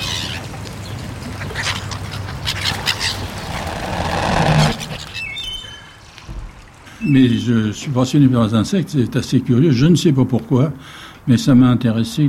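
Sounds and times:
gull and moorhen squawking and chirping over bread: 0:00.0 - 0:07.5
speech: 0:07.1 - 0:12.2.

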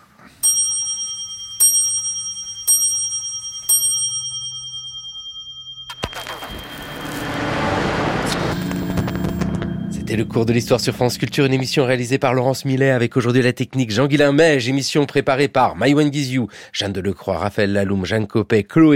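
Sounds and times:
antique Versailles clock chiming: 0:00.4 - 0:12.8
broad rushing noise: 0:06.1 - 0:12.2
speech: 0:10.1 - 0:18.9.

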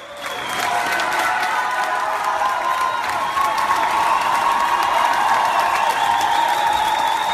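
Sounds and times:
standing ovation applause in a Moscow theatre: 0:00.0 - 0:07.3.

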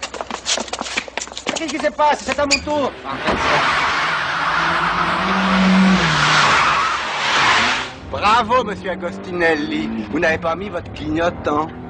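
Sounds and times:
speech: 0:01.6 - 0:04.0, 0:08.1 - 0:11.8
tires squealing and skidding: 0:02.4 - 0:11.7
car engine revving hard as the vehicle pulls away: 0:02.6 - 0:11.8.

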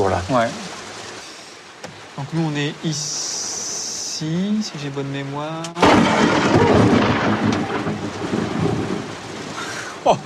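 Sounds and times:
rain hissing during a thunderstorm: 0:00.0 - 0:10.2
speech: 0:00.1 - 0:00.6, 0:02.2 - 0:03.4, 0:04.2 - 0:08.0, 0:10.0 - 0:10.2
loud crack of thunder from lightning striking about 30 metres away: 0:05.8 - 0:09.2
sustained heavy thunder rumble during a thunderstorm: 0:05.8 - 0:09.8.

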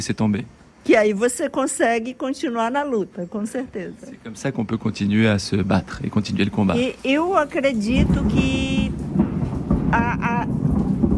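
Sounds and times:
speech: 0:00.0 - 0:09.0, 0:09.9 - 0:10.6
thunder rumbling from an approaching storm: 0:04.6 - 0:11.1.

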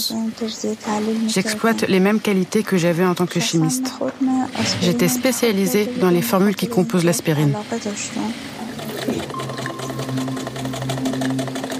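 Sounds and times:
speech: 0:00.0 - 0:09.5
sewing machine running as its wheel turns: 0:08.6 - 0:11.7.

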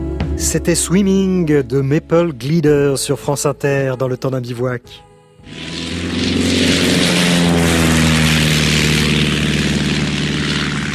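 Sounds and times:
speech: 0:00.4 - 0:05.7
propeller airplane engine droning: 0:05.4 - 0:10.9.

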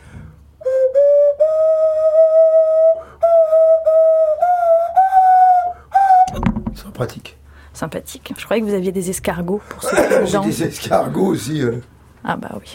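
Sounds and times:
nose whistle playing a simple melody: 0:00.6 - 0:06.5
speech: 0:07.0 - 0:12.7.

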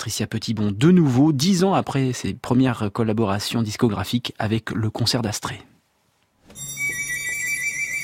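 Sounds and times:
speech: 0:00.0 - 0:05.7
mobile phone ringtone: 0:06.5 - 0:08.0.

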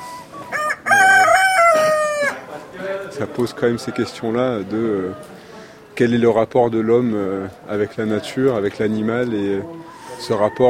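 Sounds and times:
rooster crowing: 0:00.5 - 0:02.4
speech: 0:03.2 - 0:05.4, 0:06.0 - 0:10.6.

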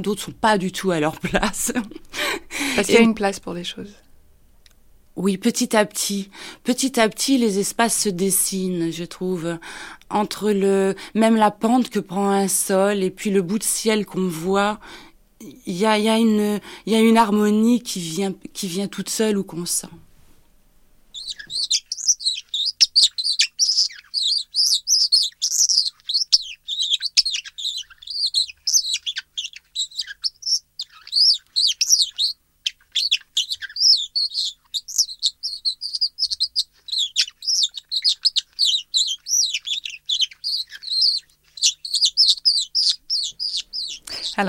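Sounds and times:
speech: 0:00.0 - 0:04.0, 0:05.2 - 0:20.0
small bird calling in rapid dry scratchy chirps: 0:21.1 - 0:44.4.

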